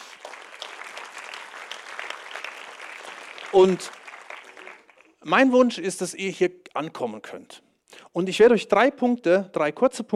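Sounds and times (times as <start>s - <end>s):
crowd clapping, many hands: 0.0s - 5.3s
speech: 3.5s - 4.0s, 5.2s - 10.1s.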